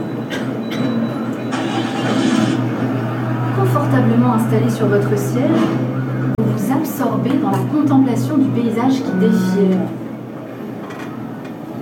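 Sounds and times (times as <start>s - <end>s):
moving bus engine rumble: 0.0s - 10.8s
speech: 4.5s - 5.9s, 7.1s - 10.0s.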